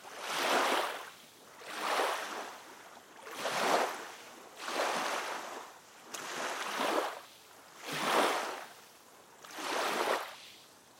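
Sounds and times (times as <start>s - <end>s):
waves lapping: 0.0s - 10.9s.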